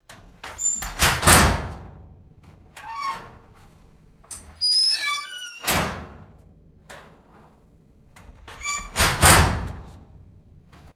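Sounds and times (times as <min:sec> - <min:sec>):
distant squeaky metal locker door: 0:00.5 - 0:01.8, 0:02.8 - 0:03.6, 0:04.3 - 0:06.3, 0:08.4 - 0:10.7.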